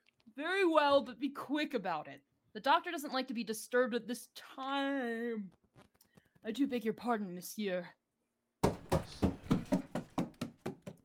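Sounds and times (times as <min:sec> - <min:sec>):
speech: 0:00.4 - 0:08.0
heavy footsteps stomping up wooden stairs: 0:08.6 - 0:11.0.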